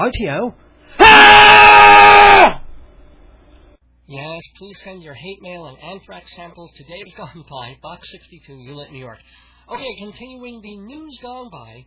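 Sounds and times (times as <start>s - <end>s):
speech: 0.0s - 2.6s, 4.1s - 11.8s
man screaming: 1.0s - 2.6s.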